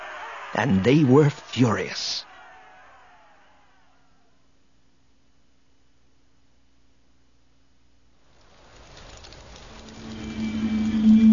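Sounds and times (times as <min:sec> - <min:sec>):
speech: 0:00.6 - 0:02.3
pouring rain: 0:08.2 - 0:11.3
low droning hum: 0:09.8 - 0:11.3.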